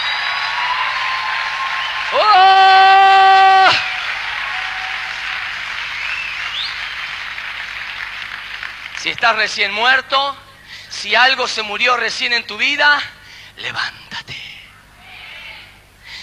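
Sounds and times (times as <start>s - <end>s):
crowd applauding: 0.0s - 9.7s
speech: 2.1s - 2.5s, 9.1s - 14.0s
person exclaiming loudly: 2.1s - 3.9s.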